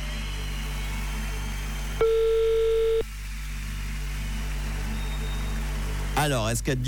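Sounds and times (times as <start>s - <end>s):
low constant hum: 0.0s - 6.8s
telephone ringback tone on outgoing call: 2.0s - 3.0s
speech: 6.2s - 6.8s.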